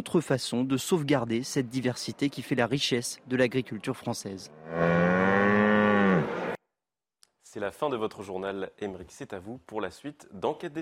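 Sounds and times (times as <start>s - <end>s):
speech: 0.0s - 5.5s, 7.5s - 10.7s
Bordelaise cow mooing: 4.5s - 6.6s.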